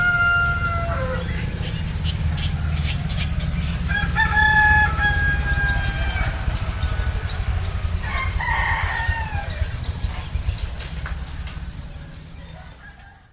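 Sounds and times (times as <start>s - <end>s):
rooster crowing in a village at Pitulu, Indonesia: 0.0s - 1.6s, 3.8s - 9.8s, 12.4s - 13.3s
constant heavy hum of traffic: 0.0s - 13.3s.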